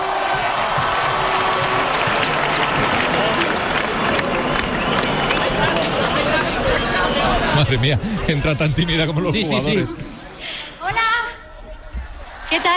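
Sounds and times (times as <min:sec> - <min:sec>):
people cheering: 0:00.0 - 0:07.9
crowd applauding: 0:00.0 - 0:08.0
murmur of voices: 0:02.0 - 0:12.7
speech: 0:07.6 - 0:10.5, 0:12.5 - 0:12.7.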